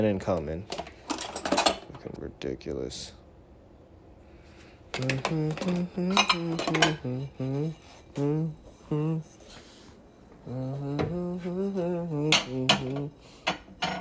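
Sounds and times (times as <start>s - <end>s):
speech: 0.0s - 0.8s, 2.0s - 3.2s, 5.0s - 9.6s, 10.4s - 13.9s
dishes and cutlery clattering while washing: 0.7s - 2.0s, 5.0s - 7.0s, 12.3s - 13.9s
person humming or murmuring: 4.9s - 9.5s, 10.3s - 13.2s.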